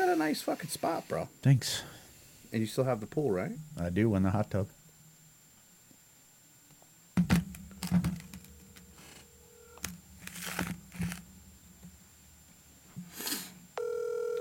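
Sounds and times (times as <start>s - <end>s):
speech: 0.2s - 4.8s
crinkly handling noises: 7.7s - 11.3s
steady electronic phone ringing tone: 9.4s - 9.8s, 13.8s - 14.3s.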